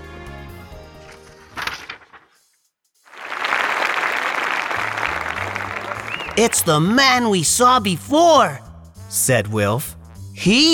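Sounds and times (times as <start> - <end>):
music: 0.0 - 1.7, 4.8 - 10.7
large audience applauding as a magician is introduced on stage: 3.1 - 7.0
speech: 6.4 - 10.7.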